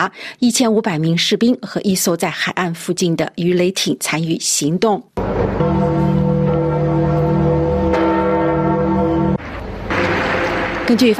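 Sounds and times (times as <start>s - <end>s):
speech: 0.0s - 6.4s, 10.9s - 11.1s
church bells ringing at St Peter's Basilica: 5.2s - 11.1s.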